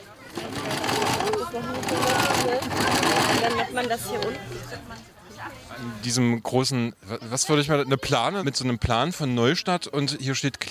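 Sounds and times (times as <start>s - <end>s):
indistinct voices chattering: 0.0s - 6.2s
sewing machines whirring: 0.2s - 4.0s
speech: 3.8s - 10.6s.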